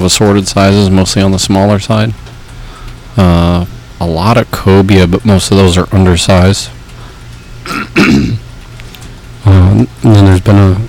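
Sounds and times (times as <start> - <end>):
speech: 0.0 - 2.3, 3.2 - 6.8, 7.6 - 8.4, 9.4 - 10.8
low steady hum: 0.0 - 10.8
rough throat clearing: 7.7 - 8.4.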